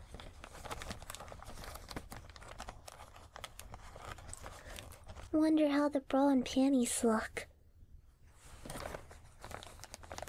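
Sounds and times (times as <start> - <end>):
plastic bag holding underwear crinkling as it is opened: 0.0 - 5.4, 8.6 - 10.2
speech: 5.3 - 7.5.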